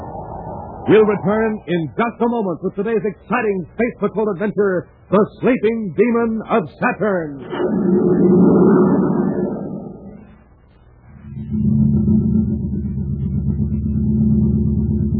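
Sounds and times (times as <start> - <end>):
futuristic jet-driven surface car engine running slowly on ordinary fuel: 0.0 - 3.8, 7.4 - 15.1
speech: 0.8 - 9.2.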